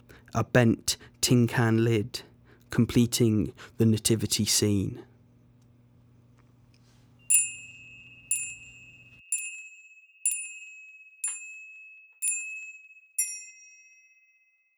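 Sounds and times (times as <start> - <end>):
faint low hum: 0.0 - 9.2
speech: 0.3 - 5.1
small Christmas cracker bells twinkling: 7.2 - 14.7.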